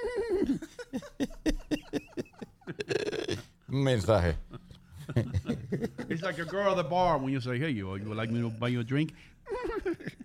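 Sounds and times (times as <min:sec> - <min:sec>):
laughter: 0:00.0 - 0:03.5, 0:04.5 - 0:08.9, 0:09.5 - 0:10.2
human voice imitating a mare's neigh: 0:02.8 - 0:03.5
speech: 0:03.8 - 0:04.5, 0:05.1 - 0:09.4.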